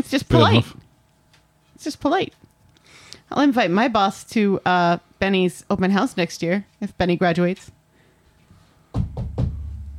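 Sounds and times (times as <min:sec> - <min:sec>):
speech: 0:00.1 - 0:00.8, 0:01.8 - 0:02.5, 0:03.3 - 0:07.8
knuckles knocking on wooden surface: 0:09.0 - 0:09.6.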